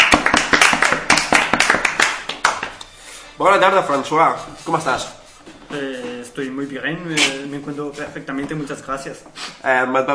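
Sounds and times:
crowd applauding: 0.0 - 2.8
speech: 3.4 - 10.1.

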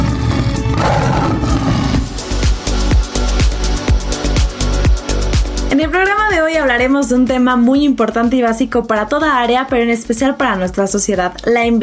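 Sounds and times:
lion roaring: 0.0 - 2.4
steady punchy thumping beat: 0.0 - 11.8
speech: 6.0 - 11.8.

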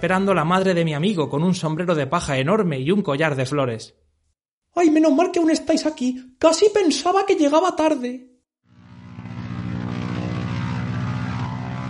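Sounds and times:
speech: 0.0 - 4.0, 4.8 - 8.3
small propeller plane engine droning while landing: 8.7 - 11.8.

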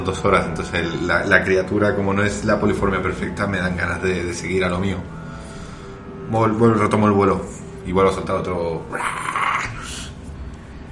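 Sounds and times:
speech: 0.0 - 5.2, 6.3 - 9.3
person imitating a raspy dragon roar: 8.9 - 10.1.

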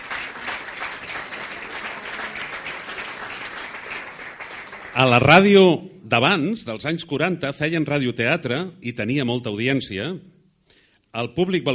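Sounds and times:
audience applauding with many hands clapping: 0.0 - 5.6
speech: 5.0 - 10.3, 11.1 - 11.7.

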